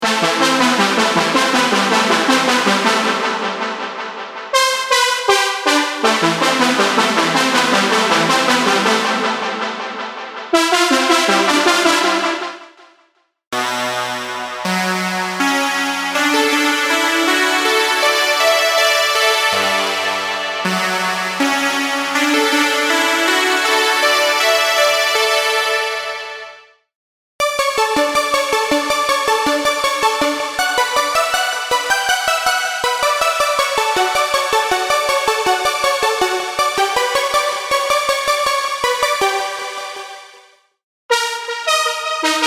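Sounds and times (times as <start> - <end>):
synthwave synth pop melodies: 0.0 - 12.6, 13.8 - 26.4, 27.4 - 40.4, 41.1 - 42.4.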